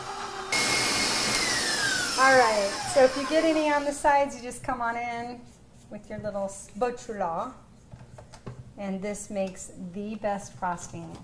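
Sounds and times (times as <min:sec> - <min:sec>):
KitchenAid stand mixer with whisk attachment whipping coconut milk frosting: 0:00.0 - 0:03.9
speech: 0:02.2 - 0:07.6, 0:08.8 - 0:11.2.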